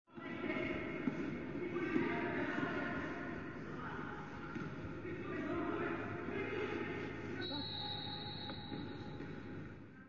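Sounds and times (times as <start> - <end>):
sports hall ambience: 0.1 - 10.0.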